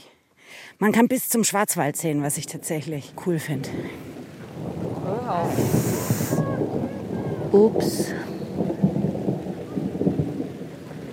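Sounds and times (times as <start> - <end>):
steady rain from a short summer rain shower: 0.0 - 11.1
speech: 0.8 - 4.1, 5.3 - 6.0, 7.5 - 8.7
deep rolling thunder during a hike: 2.6 - 11.1.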